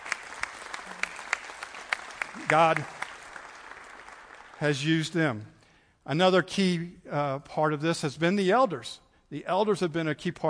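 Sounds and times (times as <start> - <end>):
church congregation applauding during a service: 0.0 - 5.5
speech: 2.4 - 3.0, 4.6 - 10.4.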